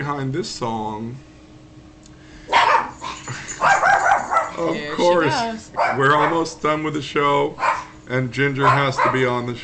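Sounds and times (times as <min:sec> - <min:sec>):
speech: 0:00.0 - 0:01.3, 0:04.6 - 0:09.6
female dog barking at someone behind a door: 0:02.5 - 0:04.6, 0:05.8 - 0:06.6, 0:07.6 - 0:08.0, 0:08.6 - 0:09.4.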